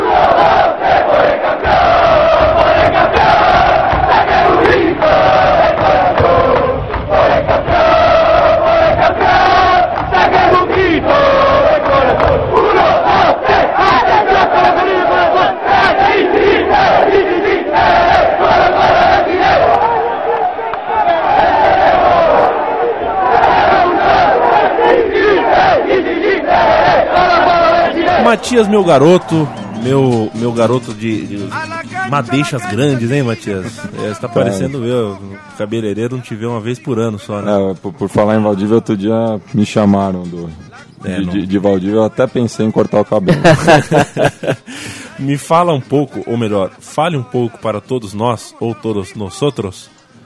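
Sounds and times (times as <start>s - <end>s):
large crowd of football supporters singing a club chant in unison: 0.0s - 31.0s
speech: 28.4s - 50.0s
laughter: 42.9s - 45.4s.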